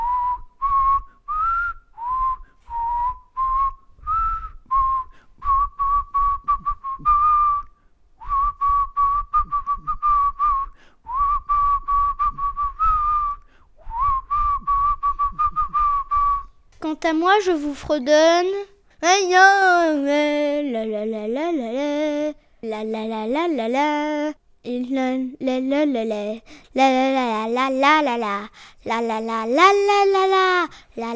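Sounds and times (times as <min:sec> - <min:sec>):
person whistling a lively tune: 0:00.0 - 0:16.6
speech: 0:17.1 - 0:31.1.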